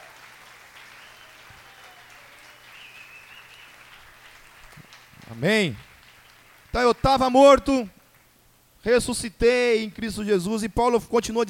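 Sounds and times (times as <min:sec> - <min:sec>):
congregation applauding during a church worship service: 0:00.0 - 0:08.4
speech: 0:05.3 - 0:05.9, 0:06.8 - 0:08.0, 0:08.8 - 0:11.4.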